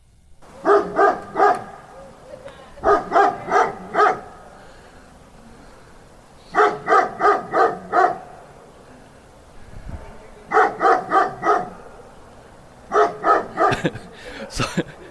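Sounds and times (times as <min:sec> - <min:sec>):
dog barking: 0:00.4 - 0:04.5, 0:06.5 - 0:08.4, 0:10.5 - 0:12.2, 0:12.8 - 0:14.0
laughter: 0:00.5 - 0:05.8, 0:13.3 - 0:15.1.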